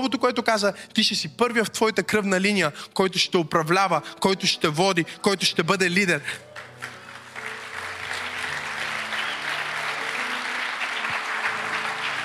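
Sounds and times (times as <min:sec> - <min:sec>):
speech: 0:00.0 - 0:06.9
congregation applause during a sermon: 0:06.4 - 0:12.2.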